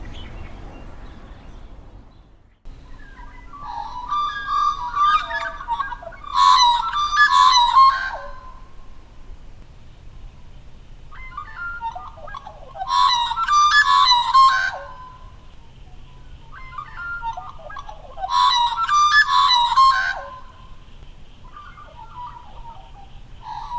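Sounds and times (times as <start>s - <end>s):
magpie calling with warbled fluty notes: 2.8s - 8.6s, 11.1s - 20.7s.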